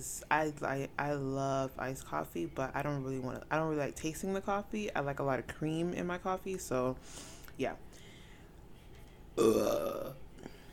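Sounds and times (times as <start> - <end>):
speech: 0.0 - 8.0, 9.4 - 10.2
loud burp: 9.4 - 10.2.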